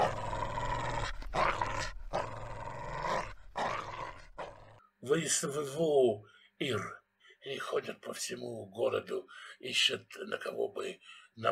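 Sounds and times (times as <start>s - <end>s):
dog growling and snarling: 0.0s - 4.8s
speech: 5.0s - 11.5s.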